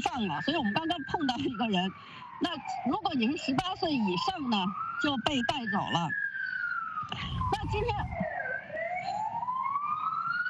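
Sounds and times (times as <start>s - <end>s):
police car siren wailing at a street protest: 0.0s - 10.4s
speech: 0.1s - 6.3s, 7.1s - 8.3s
low rumble: 7.2s - 8.3s.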